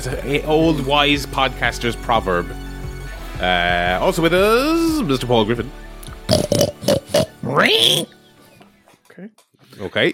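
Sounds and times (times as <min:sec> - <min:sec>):
speech: 0:00.0 - 0:02.6, 0:03.4 - 0:05.9, 0:06.6 - 0:08.2, 0:09.2 - 0:10.1
man imitating a pig with grunting oinks and squeal: 0:06.3 - 0:08.1.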